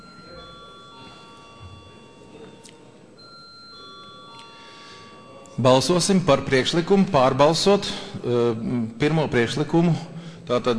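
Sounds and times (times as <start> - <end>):
parliamentary electric bell rung before a vote: 0.0 - 6.9
low murmur: 0.0 - 10.7
speech: 5.6 - 10.7.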